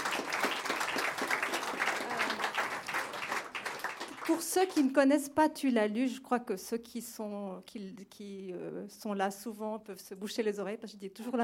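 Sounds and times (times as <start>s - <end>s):
room full of people applauding: 0.0s - 4.8s
speech: 4.3s - 11.4s.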